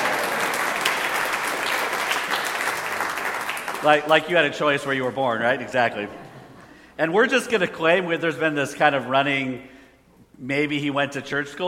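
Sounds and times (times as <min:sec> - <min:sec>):
crowd applauding: 0:00.0 - 0:04.3
speech: 0:03.8 - 0:06.2, 0:07.0 - 0:09.7, 0:10.4 - 0:11.6.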